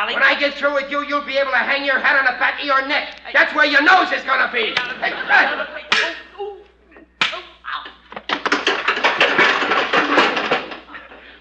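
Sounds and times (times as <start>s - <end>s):
speech: 0.0s - 5.8s
laughter: 4.6s - 7.2s
fistfight punches: 7.2s - 11.0s.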